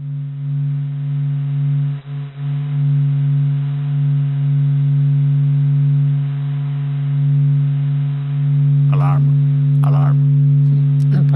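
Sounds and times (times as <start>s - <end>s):
sonification of the Sun's vibrations as layered humming tones: 0.0s - 11.3s
noisy bursts: 6.9s - 11.3s.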